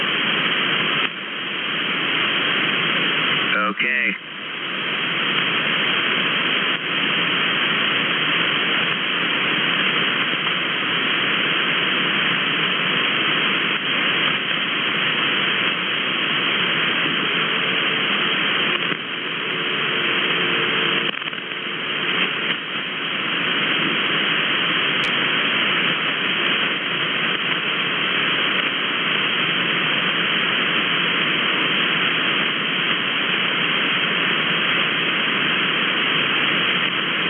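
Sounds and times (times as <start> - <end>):
radio static hissing from an amateur radio receiver tuned off frequency: 0.0 - 37.2.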